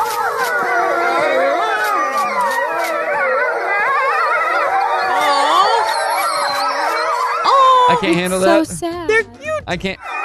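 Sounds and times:
pack of European wolves howling at a safari park in England: 0:00.0 - 0:08.6, 0:10.0 - 0:10.2
faint fire alarm tone during a test: 0:05.0 - 0:07.5
speech: 0:08.0 - 0:10.0.

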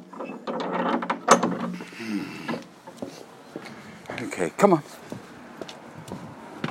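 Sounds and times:
rattle and click of a garden gate latch catching: 0:00.0 - 0:01.8
metal garden gate swinging shut: 0:00.0 - 0:02.6
speech: 0:04.4 - 0:04.9.

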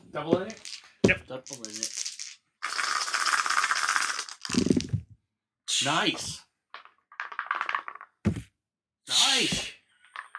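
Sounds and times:
speech: 0:00.1 - 0:02.0, 0:05.8 - 0:06.4, 0:09.4 - 0:09.6
dice rattling in a cup or hand: 0:00.3 - 0:05.2, 0:06.2 - 0:08.5, 0:09.5 - 0:10.3.

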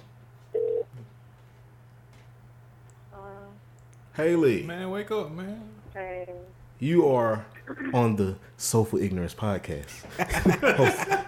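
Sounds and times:
steady low electrical hum: 0:00.0 - 0:11.2
buzzy telephone ringing tone: 0:00.6 - 0:00.8
speech: 0:04.2 - 0:11.2
laughter: 0:10.0 - 0:11.2.

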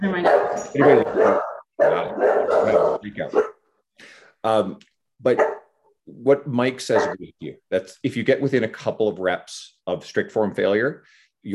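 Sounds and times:
speech: 0:00.0 - 0:01.5, 0:03.1 - 0:03.5, 0:04.4 - 0:11.5
dog barking: 0:00.1 - 0:03.6, 0:05.4 - 0:05.7, 0:07.0 - 0:07.2.

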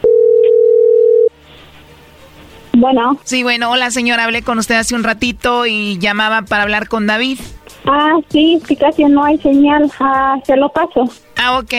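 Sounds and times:
telephone ringing tone of an outgoing call: 0:00.0 - 0:01.4
speech: 0:02.8 - 0:11.7.

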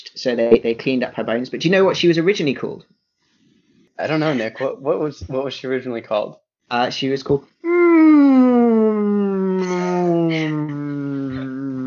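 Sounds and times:
speech: 0:00.2 - 0:03.0, 0:04.0 - 0:08.3
human voice imitating a whale call: 0:07.6 - 0:11.8.

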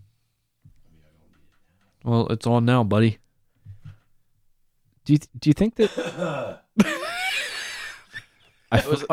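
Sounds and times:
speech: 0:02.0 - 0:03.2, 0:05.1 - 0:07.0, 0:08.7 - 0:09.1
harsh cough: 0:05.8 - 0:08.1.

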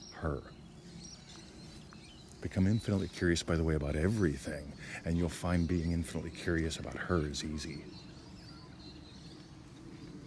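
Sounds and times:
birds chirping: 0:00.0 - 0:10.2
speech: 0:00.2 - 0:00.6, 0:02.4 - 0:08.1.

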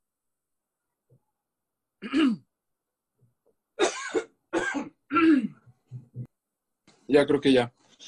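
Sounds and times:
speech: 0:02.0 - 0:02.4, 0:07.1 - 0:08.0
person clearing throat: 0:02.0 - 0:02.5, 0:03.8 - 0:06.3
person coughing: 0:02.0 - 0:02.5, 0:03.8 - 0:05.6.

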